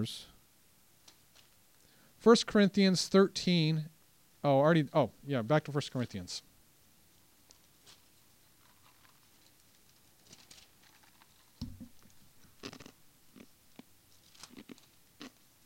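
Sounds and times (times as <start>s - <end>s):
speech: 0.0s - 0.3s, 2.2s - 6.5s
crunchy chewing of something hard: 8.6s - 15.5s.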